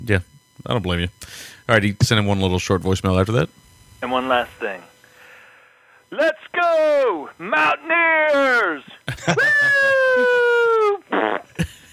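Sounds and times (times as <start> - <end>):
speech: 0.1 - 4.9, 6.1 - 10.4
laughter: 8.9 - 11.9
long loud buzzing fart on a voicemail: 11.0 - 11.9
short raspy fart sputters: 11.1 - 11.6.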